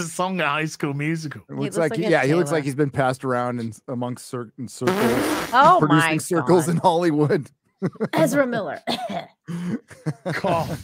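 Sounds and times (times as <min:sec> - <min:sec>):
speech: 0:00.0 - 0:10.8
laughter: 0:05.6 - 0:10.8
person coughing deliberately: 0:08.1 - 0:10.8.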